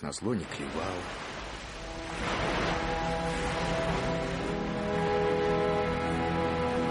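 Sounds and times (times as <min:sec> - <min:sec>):
speech: 0:00.0 - 0:01.6
surf from a rough sea after a storm rolling onto a sandy shore: 0:00.3 - 0:06.3.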